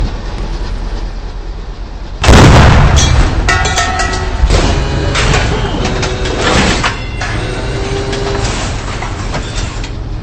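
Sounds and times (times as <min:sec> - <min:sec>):
tank reloading: 0:02.2 - 0:10.2.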